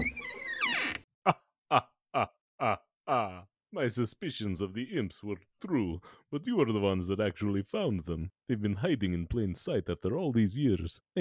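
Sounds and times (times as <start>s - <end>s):
creaky groaning door swinging open with a rushing burst: 0.0s - 1.1s
speech: 1.3s - 1.9s, 3.8s - 11.2s.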